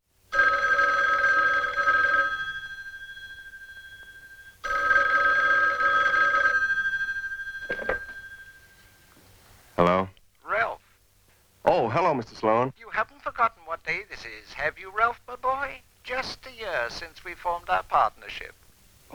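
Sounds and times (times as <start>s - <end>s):
old-fashioned telephone bell ringing with a metallic jangle: 0.3s - 9.2s
speech: 12.1s - 19.1s.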